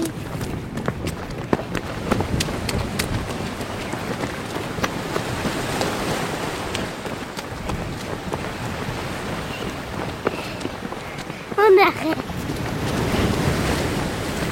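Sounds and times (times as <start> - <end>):
strong wind across a flat open coast buffeting the microphone: 0.0 - 14.5
surf washing by the sea: 0.0 - 14.5.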